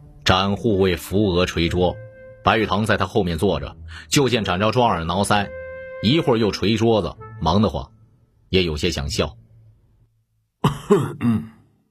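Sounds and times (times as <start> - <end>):
speech: 0.3 - 9.4, 10.9 - 11.5
male tutor giving a short voiced cough: 10.6 - 11.7.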